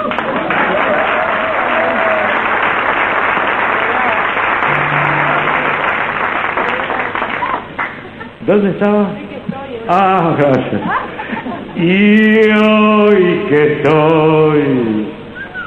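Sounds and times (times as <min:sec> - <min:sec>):
crowd applauding: 0:00.0 - 0:08.3
speech: 0:08.5 - 0:09.2, 0:09.9 - 0:11.0, 0:11.8 - 0:15.2.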